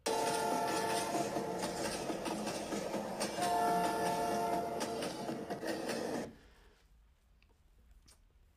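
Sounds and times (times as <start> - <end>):
train rumbling along railway tracks: 0.0 - 6.4.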